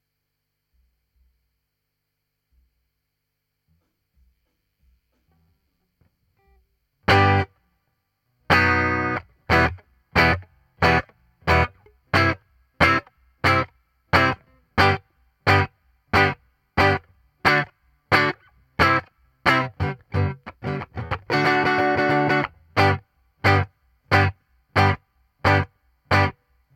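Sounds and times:
guitar: 5.2 - 26.7.

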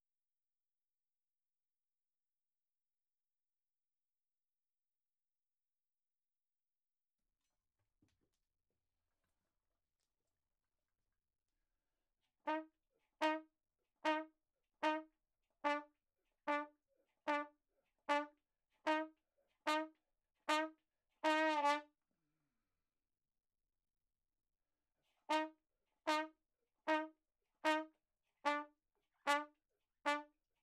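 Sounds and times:
ragtime trumpet playing in a room: 12.5 - 15.9, 16.5 - 16.7, 17.3 - 17.5, 18.1 - 19.9, 20.5 - 21.9, 25.3 - 26.3, 26.9 - 28.7, 29.3 - 29.5, 30.1 - 30.3.

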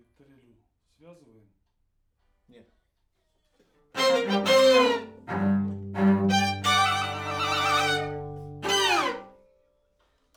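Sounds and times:
main strings playing: 4.0 - 9.3.

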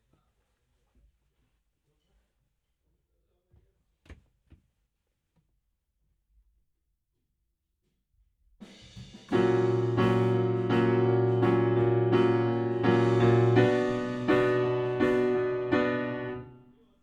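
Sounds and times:
low piano notes: 9.3 - 16.7.

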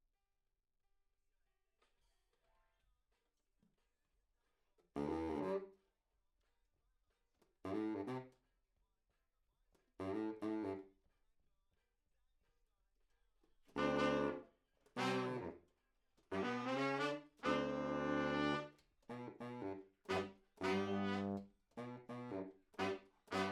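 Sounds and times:
trombone: 7.7 - 8.3, 10.0 - 10.8, 13.7 - 14.4, 15.0 - 15.6, 16.3 - 23.5.

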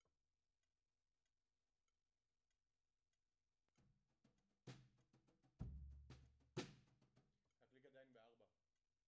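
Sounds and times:
floor drum beat at 96bpm: 5.6 - 7.0.

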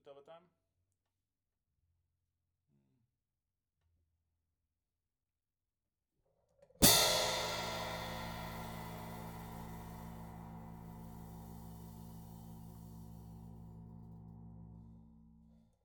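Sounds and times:
hi-hat: 6.8 - 14.4.

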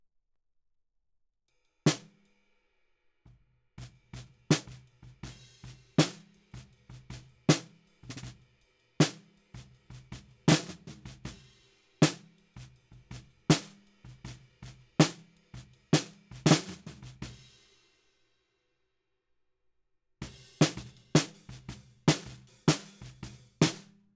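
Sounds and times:
snare drum recorded from the bottom: 1.9 - 2.2, 3.8 - 8.4, 9.0 - 11.4, 12.0 - 17.4, 20.2 - 23.9.

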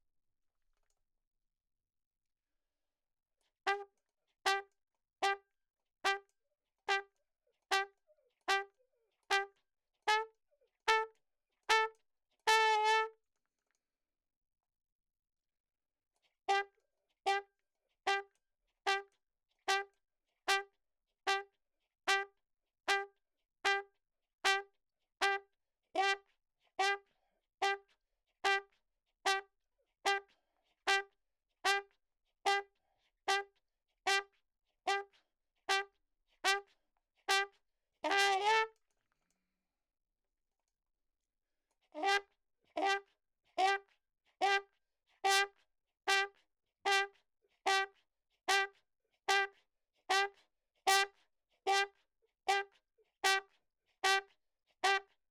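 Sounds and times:
ragtime trumpet: 3.7 - 3.9, 4.5 - 5.4, 6.1 - 6.3, 6.9 - 10.3, 10.9 - 11.1, 11.7 - 13.1, 16.5 - 16.7, 18.1 - 18.3, 18.9 - 19.1, 20.5 - 20.7, 21.3 - 21.5, 22.1 - 22.3, 22.9 - 23.1, 24.5 - 25.4, 26.0 - 26.2, 26.8 - 27.0, 27.6 - 27.8, 28.4 - 28.7, 30.1 - 30.3, 30.9 - 31.1, 31.7 - 31.9, 32.5 - 32.7, 33.3 - 33.5, 34.1 - 34.3, 34.9 - 35.1, 35.7 - 36.6, 37.3 - 38.8, 42.0 - 43.0, 43.6 - 43.8, 44.4 - 44.6, 45.2 - 45.5, 46.1 - 46.3, 46.9 - 47.1, 47.7 - 47.9, 48.5 - 48.7, 49.3 - 49.5, 50.1 - 50.3, 50.9 - 51.1, 51.7 - 51.9, 52.5 - 53.4, 54.0 - 54.2, 54.8 - 55.0.

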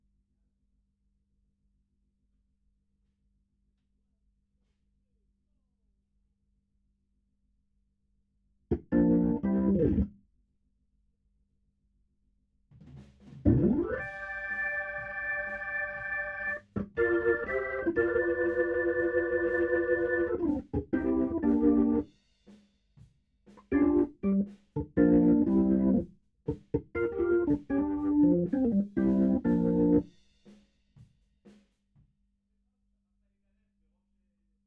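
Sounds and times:
Hammond organ: 8.9 - 10.0, 13.5 - 22.0, 23.7 - 24.4, 25.0 - 26.0, 27.0 - 30.0.

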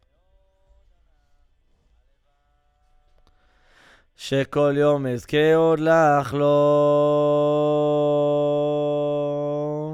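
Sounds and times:
guide vocal: 4.2 - 9.9.

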